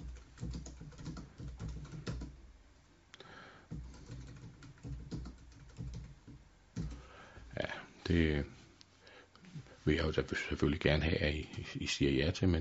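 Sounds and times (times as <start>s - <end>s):
typing on a computer keyboard: 0.0s - 2.4s, 3.7s - 7.0s
speech: 8.1s - 8.6s, 9.8s - 12.5s.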